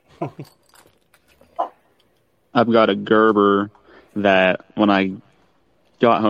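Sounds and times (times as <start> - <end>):
speech: 0.2 - 0.6, 2.6 - 5.3, 6.0 - 6.2
dog barking: 1.5 - 1.8.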